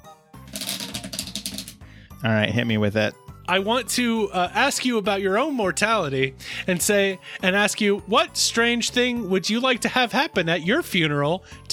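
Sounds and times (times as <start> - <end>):
deck of cards being shuffled: 0.4 - 1.8
speech: 2.2 - 11.7.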